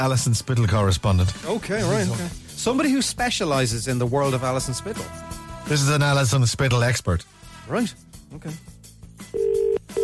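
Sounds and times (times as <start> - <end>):
speech: 0.0 - 8.7
telephone line ringing tone through the handset: 9.4 - 10.0.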